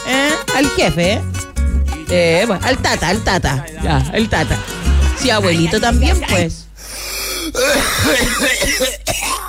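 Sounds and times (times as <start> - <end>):
speech: 0.6 - 1.3, 2.1 - 6.6, 7.6 - 9.4
person giving rough coughs: 7.4 - 9.4
person guttural throat clearing: 7.5 - 9.4.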